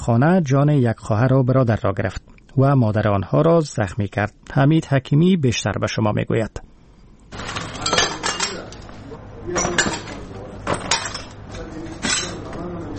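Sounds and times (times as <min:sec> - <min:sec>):
speech: 0:00.0 - 0:06.7
low hum: 0:00.0 - 0:12.9
shards of broken glass clinking and scraping as they are gathered up in a rocket-damaged house: 0:07.4 - 0:08.8, 0:09.5 - 0:11.4, 0:12.0 - 0:12.5
faint voices murmuring: 0:07.4 - 0:12.9.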